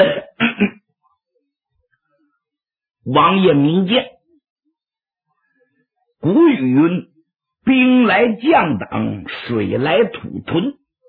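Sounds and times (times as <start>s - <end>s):
man clearing throat: 0.0s - 0.8s
speech: 3.1s - 4.2s, 6.2s - 7.1s, 7.7s - 10.8s.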